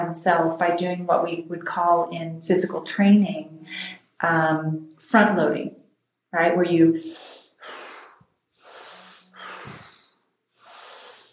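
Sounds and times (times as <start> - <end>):
speech: 0.1 - 7.4
strong deep breaths in and out, hyperventilation-style breathing: 7.0 - 11.3.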